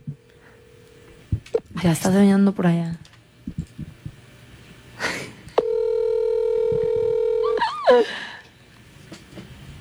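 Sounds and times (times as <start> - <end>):
speech: 1.8 - 3.0, 8.0 - 8.2
phone ringback tone, steady buzzing hum: 5.6 - 7.7.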